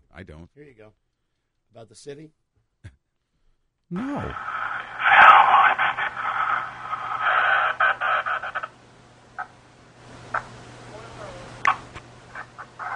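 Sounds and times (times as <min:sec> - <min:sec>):
speech: 0:00.2 - 0:01.1, 0:01.7 - 0:03.0, 0:03.9 - 0:05.2
steady low hum: 0:02.8 - 0:12.9
crackling radio-style static: 0:04.0 - 0:12.9.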